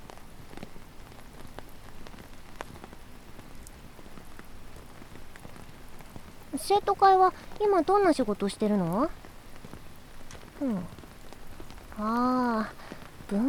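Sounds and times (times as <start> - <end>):
steady rain falling on a surface: 0.0 - 13.4
speech: 6.6 - 9.2, 10.6 - 11.0, 12.0 - 13.4.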